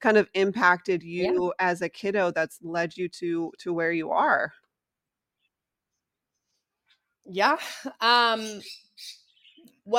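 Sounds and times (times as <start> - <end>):
speech: 0.0 - 4.6, 7.2 - 9.2
pet parakeets chirping and squawking: 8.2 - 9.8.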